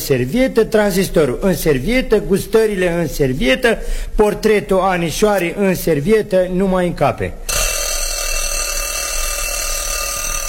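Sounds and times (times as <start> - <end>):
speech: 0.0 - 7.4
alarm clock bell ringing: 7.5 - 10.4.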